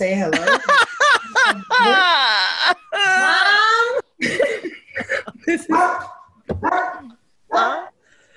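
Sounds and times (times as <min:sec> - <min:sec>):
speech: 0:00.0 - 0:00.8, 0:01.5 - 0:02.8
laughter: 0:00.3 - 0:03.3, 0:04.2 - 0:05.7
dog barking and yipping: 0:05.7 - 0:07.9.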